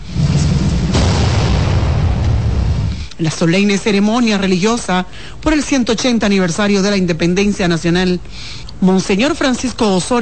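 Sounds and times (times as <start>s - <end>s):
cannon salute firing: 0.0s - 3.1s
heavy continuous low rumble: 0.0s - 3.2s
speech: 3.2s - 10.2s.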